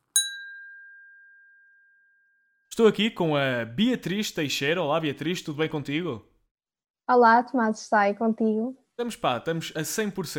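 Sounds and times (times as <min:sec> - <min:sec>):
glasses clinking in a toast: 0:00.0 - 0:02.2
speech: 0:02.8 - 0:06.3, 0:07.1 - 0:10.3.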